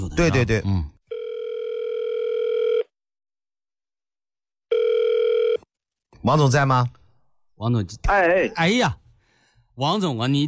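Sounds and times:
speech: 0.1s - 0.9s, 6.2s - 7.0s, 7.6s - 9.0s, 9.8s - 10.4s
phone ringback tone while dialing: 1.1s - 2.9s, 4.7s - 5.7s.

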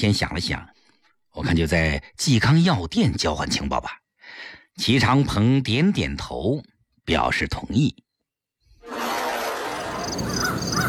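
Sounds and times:
speech: 0.0s - 8.0s
laughter: 8.8s - 10.8s
macaw parrot squawking: 10.2s - 10.8s.

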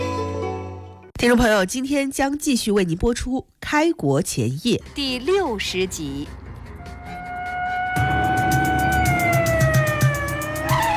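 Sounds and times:
speech: 1.2s - 6.4s
engines rumbling: 4.7s - 10.9s
police siren wailing: 6.8s - 10.9s.

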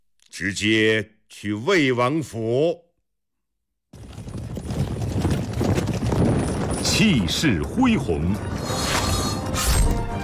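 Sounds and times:
speech: 0.4s - 2.8s, 6.8s - 8.9s
horse hooves clip-clopping: 4.0s - 8.7s
horse-drawn carriage setting off: 4.0s - 9.3s.

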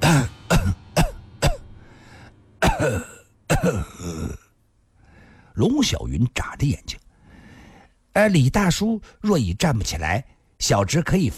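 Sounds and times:
person clearing throat: 0.0s - 1.6s, 2.6s - 4.5s
person coughing harshly: 0.0s - 1.6s, 2.6s - 4.5s
speech: 2.8s - 3.9s, 5.6s - 7.0s, 8.2s - 11.3s.

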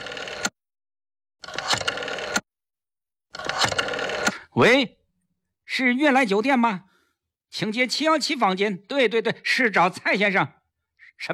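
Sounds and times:
telephone being picked up and dialed: 0.0s - 0.6s, 1.4s - 2.5s, 3.3s - 4.7s
speech: 4.6s - 5.0s, 5.7s - 6.9s, 7.5s - 10.6s.

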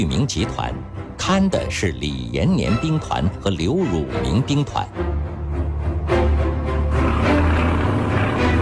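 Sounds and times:
speech: 0.0s - 5.3s
propeller plane engine drone passing overhead: 6.2s - 8.6s.

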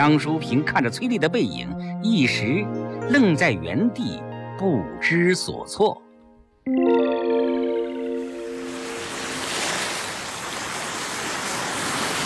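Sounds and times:
speech: 0.0s - 6.0s, 6.6s - 7.0s
ringing musical chord: 6.1s - 9.6s
ocean waves crashing on a beach: 8.2s - 12.2s.

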